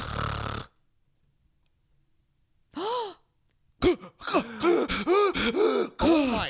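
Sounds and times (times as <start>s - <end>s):
person imitating a man's loud rasping snoring: 0.0s - 0.8s
strained wheezy breaths and groans: 0.0s - 0.8s, 2.8s - 6.4s
person gasping for air: 2.8s - 6.4s
speech: 4.0s - 4.7s.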